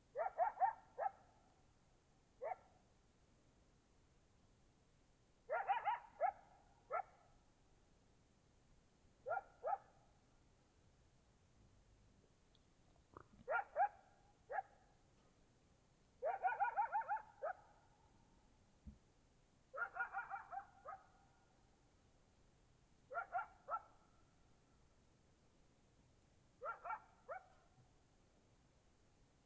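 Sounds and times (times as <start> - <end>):
close coyotes in Oregon: 0.0 - 3.0, 5.4 - 7.8, 9.1 - 10.7, 11.6 - 19.1, 19.7 - 22.2, 23.0 - 24.9, 26.0 - 29.0.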